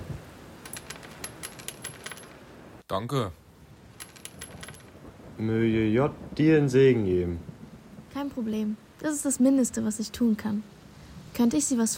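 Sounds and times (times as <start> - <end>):
coin dropped for a beggar clinking and rattling: 0.6 - 2.4, 4.0 - 5.0
speech: 2.9 - 3.4, 5.4 - 7.5, 8.2 - 11.9.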